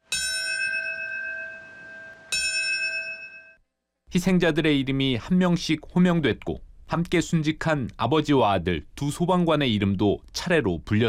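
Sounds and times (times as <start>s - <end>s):
bell tolling at a September 11 memorial ceremony: 0.0s - 3.6s
speech: 4.1s - 11.0s.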